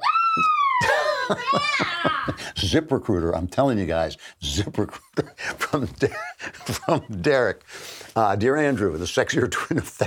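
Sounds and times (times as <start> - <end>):
sustained scream sound effect: 0.0 - 2.4
laughter: 0.8 - 2.4, 4.8 - 7.4
speech: 1.3 - 10.0.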